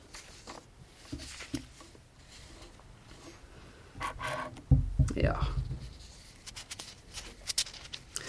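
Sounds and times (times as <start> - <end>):
book pages being leafed through: 0.0 - 3.4, 5.8 - 8.2
speech: 5.2 - 5.6.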